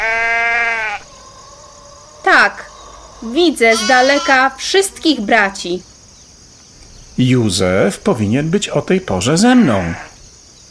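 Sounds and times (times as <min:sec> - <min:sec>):
sheep bleating: 0:00.0 - 0:01.1, 0:03.6 - 0:04.6, 0:09.6 - 0:10.2
speech: 0:03.2 - 0:05.9, 0:07.2 - 0:10.1.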